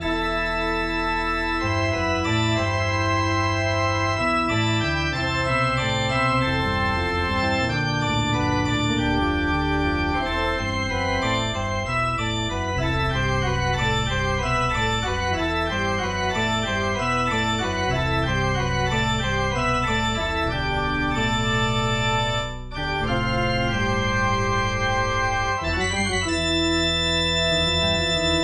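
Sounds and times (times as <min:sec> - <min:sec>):
organ music in MIDI: 0:00.0 - 0:28.4.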